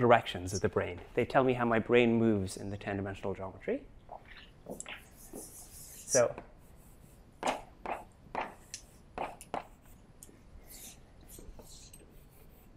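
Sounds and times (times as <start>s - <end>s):
speech: 0.0s - 4.0s, 4.7s - 5.5s, 6.1s - 6.5s
scratchy writing strokes on a board during a lecture: 4.8s - 10.0s, 10.6s - 12.7s.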